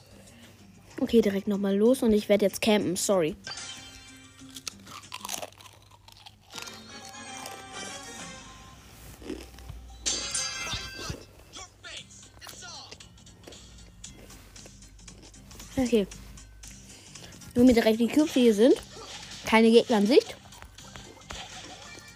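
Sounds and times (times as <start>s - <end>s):
speech: 1.0s - 3.6s, 15.8s - 16.2s, 17.6s - 18.9s, 19.5s - 20.4s
person biting and chewing a crisp chip: 4.4s - 8.4s, 9.1s - 9.7s.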